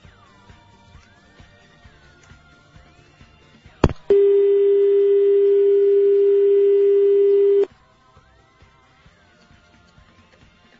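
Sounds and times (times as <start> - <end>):
telephone dial tone while a call is being dialed: 4.1 - 7.7.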